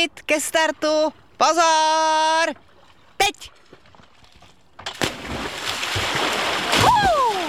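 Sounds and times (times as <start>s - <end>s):
speech: 0.0s - 3.6s
people jumping and splashing into water: 4.8s - 7.4s.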